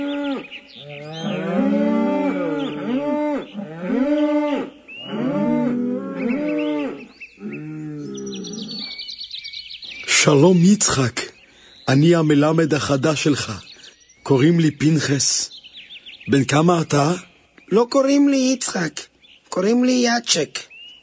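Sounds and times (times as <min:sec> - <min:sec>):
faint bird chirps: 0:00.0 - 0:01.6, 0:06.1 - 0:21.0
cows mooing: 0:00.0 - 0:09.0
speech: 0:10.3 - 0:11.2, 0:11.9 - 0:13.7, 0:14.3 - 0:15.5, 0:16.2 - 0:20.7.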